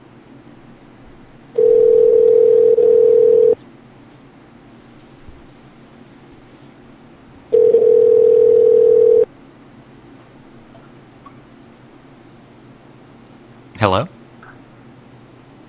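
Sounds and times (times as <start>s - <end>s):
telephone dial tone on a phone line: 1.6s - 3.6s, 7.5s - 9.3s.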